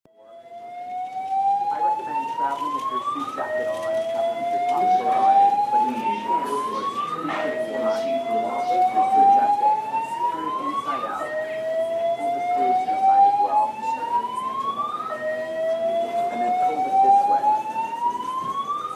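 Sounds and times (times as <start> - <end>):
airport ambience: 0.1 - 18.9.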